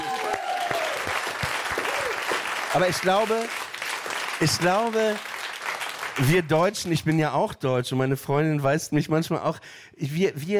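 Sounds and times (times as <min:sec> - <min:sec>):
audience applause at a live show: 0:00.0 - 0:06.9
speech: 0:02.8 - 0:03.6, 0:04.4 - 0:05.3, 0:06.2 - 0:10.5.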